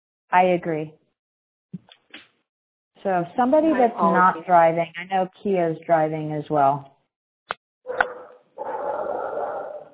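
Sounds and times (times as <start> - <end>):
speech: 0.3 - 1.0, 3.0 - 6.9
dog barking: 7.9 - 9.9.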